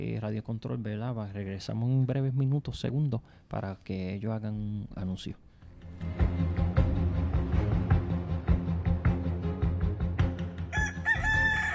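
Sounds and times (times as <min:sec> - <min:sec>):
speech: 0:00.0 - 0:06.6
thumping rhythmic music in a bingo radio advertisement: 0:05.7 - 0:11.5
rooster crowing: 0:10.7 - 0:11.7.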